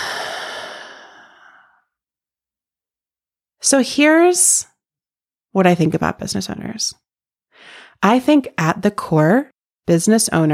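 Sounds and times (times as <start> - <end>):
long breathy exhale of a deep breath: 0.0 - 1.9
speech: 3.6 - 4.7, 5.6 - 10.5.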